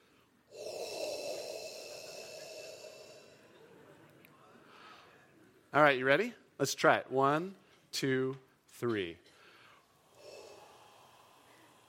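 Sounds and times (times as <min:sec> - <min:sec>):
deliberate loud breathy exhale meant to sound ancient: 0:00.5 - 0:03.7, 0:09.5 - 0:11.8
speech: 0:05.7 - 0:09.3.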